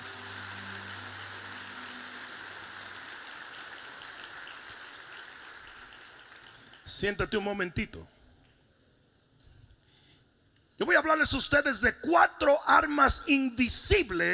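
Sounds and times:
large audience applauding loudly: 0.0 - 7.0
speech: 6.9 - 8.2, 10.8 - 14.3.

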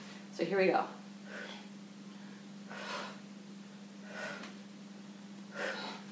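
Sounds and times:
steady low hum: 0.0 - 6.0
speech: 0.4 - 1.4
soft exhaled breaths during a spinal twisting exercise: 1.2 - 3.3, 4.0 - 4.6, 5.5 - 6.0.

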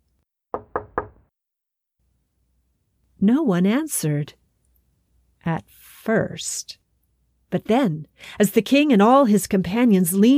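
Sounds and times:
polite knocking on a tiny wooden door: 0.5 - 1.3
speech: 3.2 - 4.4, 5.4 - 6.8, 7.5 - 10.3.

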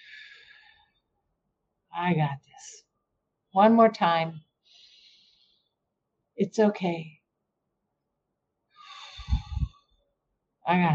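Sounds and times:
speech: 2.0 - 2.8, 3.6 - 4.5, 6.4 - 7.2, 10.7 - 10.9
deep breath drawn in through the nose: 4.7 - 5.6, 8.8 - 9.8.

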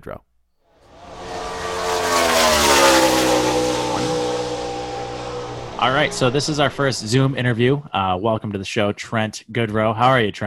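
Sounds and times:
speech: 0.0 - 0.3, 5.8 - 10.4
car engine revving: 0.9 - 8.0.

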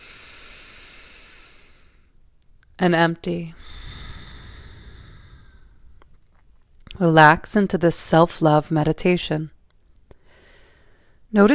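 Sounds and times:
slow breath inhaled through the nose: 0.0 - 2.1, 3.5 - 6.2
speech: 2.8 - 3.8, 7.0 - 9.6, 11.3 - 11.5.

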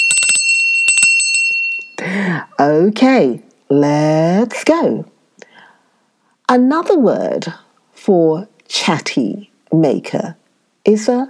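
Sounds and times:
bell ringing: 0.0 - 2.2
speech: 2.2 - 5.1, 6.5 - 11.2.

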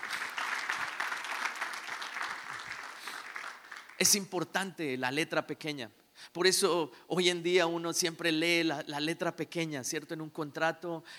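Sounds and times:
audience applauding: 0.0 - 4.2
speech: 4.0 - 11.1.

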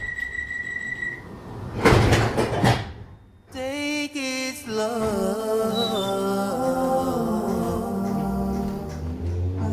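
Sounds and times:
steady high electronic warning tone of London Underground train: 0.0 - 1.4
London Underground train doors sliding shut with rushing clatter and thuds: 1.2 - 3.2, 4.9 - 9.6.

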